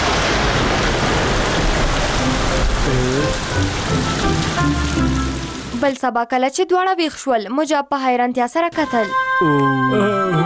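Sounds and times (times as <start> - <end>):
steady rain: 0.0 - 6.0
speech: 3.3 - 5.2, 5.8 - 10.4.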